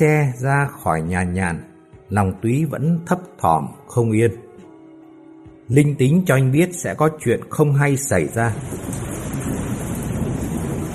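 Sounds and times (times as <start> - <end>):
speech: 0.0 - 4.4, 5.7 - 9.3
heavy pouring rain: 7.6 - 10.9.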